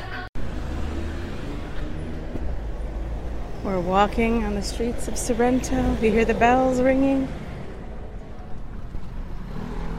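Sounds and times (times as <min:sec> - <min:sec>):
street traffic roaring in Sorrento: 0:00.0 - 0:09.9
speech: 0:03.7 - 0:07.4.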